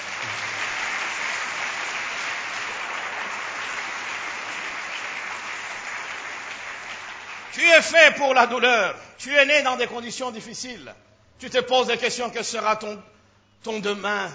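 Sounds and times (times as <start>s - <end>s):
church congregation applauding: 0.0s - 8.4s
speech: 7.6s - 14.3s.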